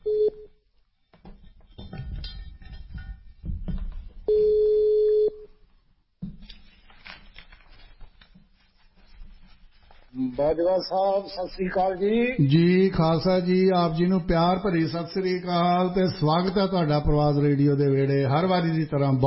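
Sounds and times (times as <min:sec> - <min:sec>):
ringback tone of an outgoing telephone call: 0:00.0 - 0:00.5, 0:04.3 - 0:05.4
speech: 0:10.4 - 0:19.2.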